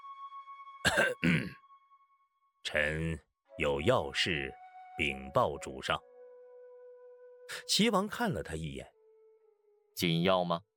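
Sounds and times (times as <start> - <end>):
man coughing to clear his throat: 0.8 - 1.6
speech: 0.9 - 1.6, 2.6 - 6.1, 7.5 - 8.9, 10.0 - 10.7.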